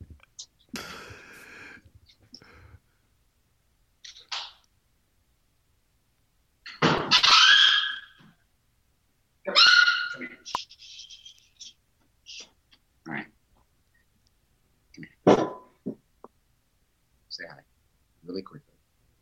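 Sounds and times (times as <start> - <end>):
dog with its foot stuck yelping: 7.1 - 8.2, 9.5 - 10.6
speech: 18.4 - 18.7.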